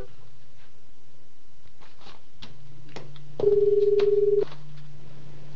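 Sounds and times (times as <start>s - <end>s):
telephone ringback tone: 3.4s - 4.4s.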